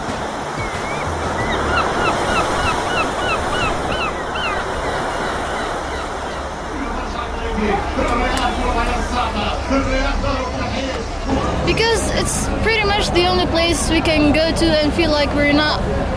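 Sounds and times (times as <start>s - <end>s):
honking bird calls: 0.0s - 6.7s
steady surf washing against the sea shore: 0.0s - 14.4s
speech: 12.3s - 16.1s.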